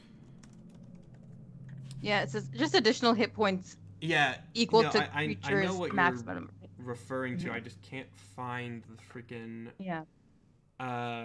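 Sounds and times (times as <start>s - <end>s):
steady low hum: 0.0s - 11.2s
typing on a computer keyboard: 0.2s - 1.8s
speech: 2.0s - 10.2s, 10.8s - 11.2s.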